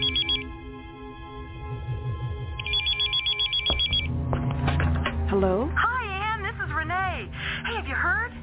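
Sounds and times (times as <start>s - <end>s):
old-fashioned telephone bell ringing: 0.0s - 0.5s, 2.6s - 4.1s
low humming background: 0.0s - 7.6s.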